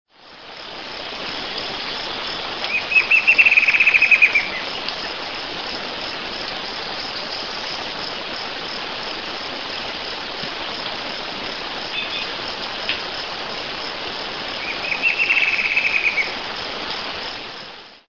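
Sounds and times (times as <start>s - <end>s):
Herpsilochmus rufimarginatus singing: 2.7s - 4.6s, 14.6s - 16.4s.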